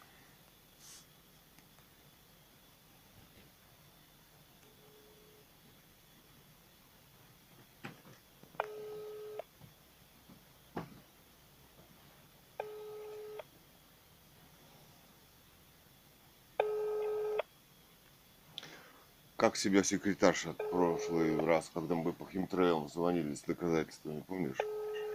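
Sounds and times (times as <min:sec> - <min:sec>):
telephone ringback tone, call not answered: 0:08.6 - 0:09.4, 0:12.6 - 0:13.4, 0:16.6 - 0:17.4, 0:20.6 - 0:21.4, 0:24.6 - 0:25.1
speech: 0:19.4 - 0:24.7.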